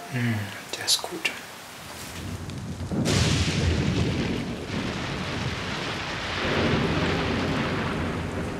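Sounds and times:
steady rain hissing: 0:00.0 - 0:08.5
speech: 0:00.1 - 0:01.4
thunder crack and rumble from a thunderstorm in the mountains: 0:01.8 - 0:08.5.

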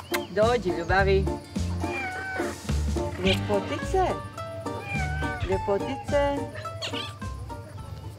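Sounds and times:
people talking: 0:00.2 - 0:01.3, 0:03.2 - 0:04.2, 0:05.4 - 0:06.5
cat meowing: 0:01.8 - 0:02.6, 0:04.6 - 0:07.2.

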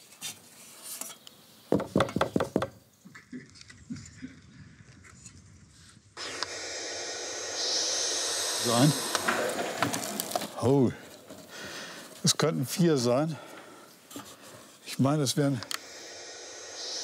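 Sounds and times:
knocks on a wooden bird nest box: 0:01.7 - 0:02.7
breathy hissing from young birds in a nest box: 0:06.2 - 0:17.0
speech: 0:08.7 - 0:09.0, 0:10.6 - 0:11.0, 0:12.2 - 0:13.5, 0:15.0 - 0:15.7.

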